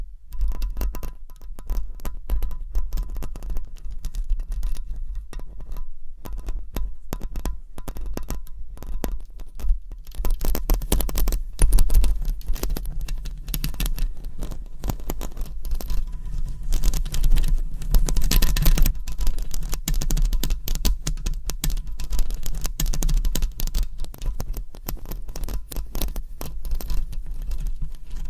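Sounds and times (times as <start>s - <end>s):
long nails scratching and rubbing across a microphone: 0.0s - 28.2s
low constant rumble: 0.0s - 28.2s.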